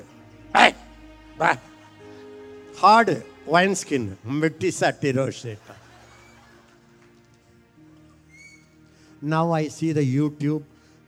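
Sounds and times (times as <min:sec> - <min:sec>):
dog barking short sharp woofs: 0:00.6 - 0:00.8
speech: 0:01.4 - 0:01.7, 0:02.8 - 0:05.8, 0:09.2 - 0:10.7
laughter: 0:05.1 - 0:07.4.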